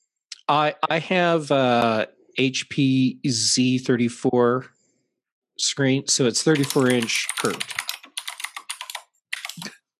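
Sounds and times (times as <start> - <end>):
speech: 0.5 - 4.8, 5.6 - 7.8
loud clicky computer keyboard typing: 6.5 - 9.8.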